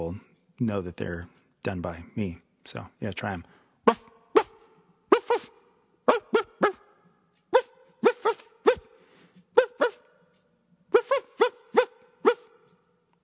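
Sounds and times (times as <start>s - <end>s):
speech: 0.0s - 4.1s
person imitating a dog barking: 3.9s - 6.9s, 7.5s - 8.9s, 9.5s - 10.1s, 10.9s - 12.6s.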